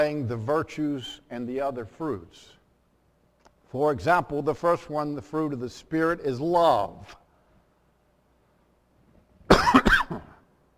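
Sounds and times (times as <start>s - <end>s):
speech: 0.0s - 2.6s, 3.7s - 7.2s
person coughing in a quick double burst: 9.5s - 10.5s.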